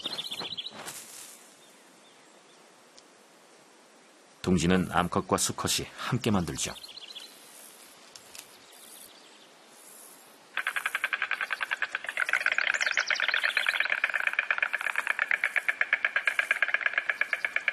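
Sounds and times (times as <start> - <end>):
pine forest ambience: 0.0 - 17.7
speech: 4.4 - 6.9
stork rattling calls in pine forest: 10.5 - 17.7.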